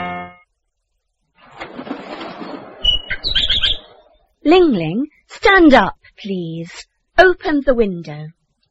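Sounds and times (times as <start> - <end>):
bird wings flapping: 1.4 - 3.8
high squeaky peeps: 2.8 - 4.1
bird chirping: 2.8 - 4.2
speech: 4.5 - 8.4.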